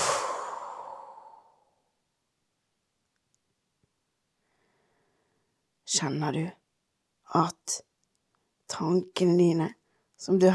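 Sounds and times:
long slow breathy exhale: 0:00.0 - 0:01.8
speech: 0:05.9 - 0:06.6, 0:07.3 - 0:07.9, 0:08.7 - 0:10.5.

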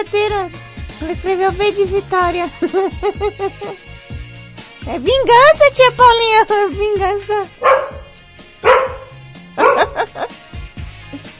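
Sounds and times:
speech: 0:00.0 - 0:03.9, 0:04.8 - 0:08.0
laughter: 0:02.6 - 0:03.8, 0:09.6 - 0:10.4
dog barking: 0:07.6 - 0:10.1.

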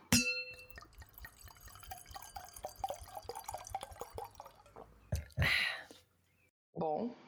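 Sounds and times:
wine glasses clinking in a toast: 0:00.1 - 0:04.8
liquid trickling and dripping: 0:00.3 - 0:05.4.

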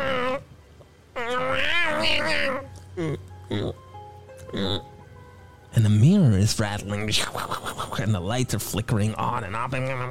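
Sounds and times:
cat yowling and meowing: 0:00.0 - 0:00.5, 0:01.2 - 0:02.7, 0:09.4 - 0:10.0
speech: 0:01.3 - 0:03.8, 0:04.5 - 0:04.9, 0:05.7 - 0:10.0.

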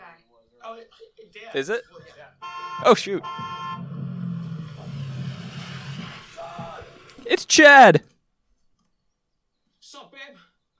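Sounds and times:
speech: 0:00.7 - 0:03.8, 0:07.2 - 0:08.1
engine of an open-top Jeep driving up: 0:03.0 - 0:07.1.

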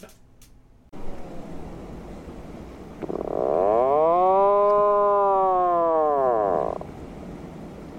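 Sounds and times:
outdoor tornado warning siren being tested in Texas: 0:03.0 - 0:06.9.

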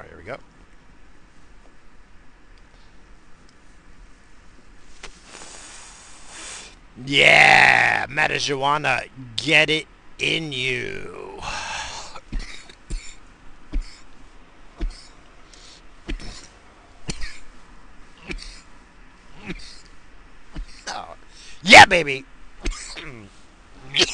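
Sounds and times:
speech: 0:00.2 - 0:00.5, 0:07.0 - 0:11.6, 0:21.9 - 0:22.4
short harsh coughs after smoking: 0:12.0 - 0:14.1, 0:16.1 - 0:17.5, 0:18.2 - 0:18.7, 0:19.4 - 0:19.9, 0:22.6 - 0:24.1.

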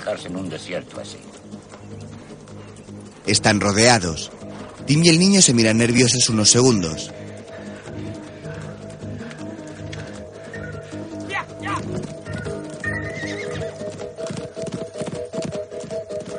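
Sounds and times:
horse hooves galloping across a desert: 0:00.0 - 0:16.3
speech: 0:00.1 - 0:02.0, 0:03.2 - 0:07.2
horse neighing: 0:10.6 - 0:14.7.

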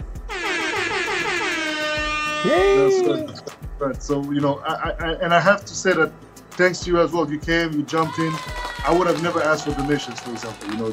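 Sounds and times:
loud air horn blast: 0:00.2 - 0:03.2
speech: 0:02.4 - 0:10.9.

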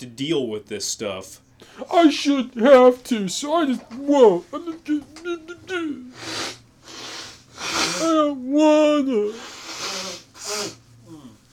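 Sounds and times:
speech: 0:00.0 - 0:06.6, 0:07.6 - 0:09.6
person blowing nose into the microphone: 0:06.1 - 0:08.2, 0:09.3 - 0:10.9.

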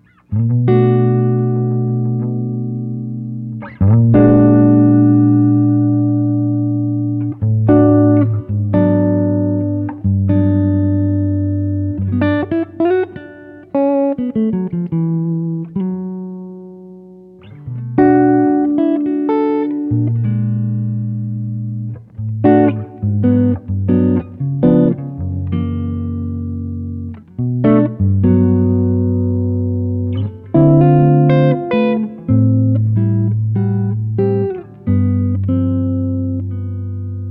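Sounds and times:
clean electric guitar through amp bright channel with added reverb: 0:00.0 - 0:37.2.

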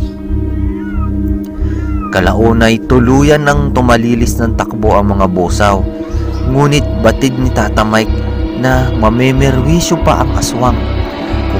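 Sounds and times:
cats yowling: 0:00.0 - 0:02.6, 0:05.8 - 0:07.0
low steady droning hum: 0:00.0 - 0:11.5
speech: 0:02.1 - 0:11.0.

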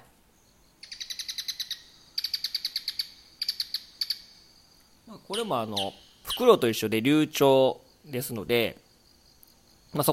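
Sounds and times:
bull-headed shrike calling: 0:00.4 - 0:08.2
speech: 0:05.3 - 0:08.8, 0:09.9 - 0:10.1.

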